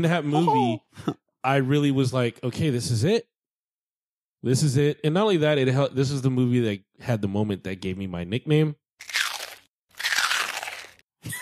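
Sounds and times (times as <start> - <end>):
speech: 0.0 - 3.3, 4.4 - 9.1
crunching on hard candy: 9.0 - 11.1.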